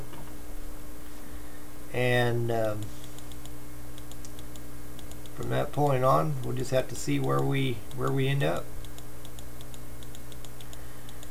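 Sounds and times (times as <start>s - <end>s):
steady low hum: 0.0s - 11.2s
speech: 2.0s - 3.0s, 5.4s - 8.7s
typing clicks on a computer keyboard: 2.6s - 11.2s.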